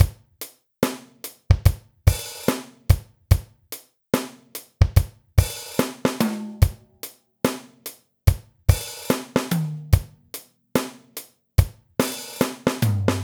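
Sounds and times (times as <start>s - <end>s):
slow tom drums: 0.0s - 0.2s, 0.8s - 3.5s, 4.8s - 7.7s, 8.3s - 11.0s, 11.6s - 13.2s.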